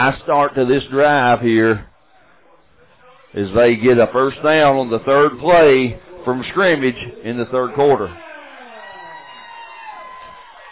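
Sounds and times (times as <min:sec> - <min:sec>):
speech: 0:00.0 - 0:01.9, 0:03.3 - 0:08.3
football crowd cheering after a first down: 0:06.7 - 0:10.7
football fans shouting and whooping: 0:08.1 - 0:10.7.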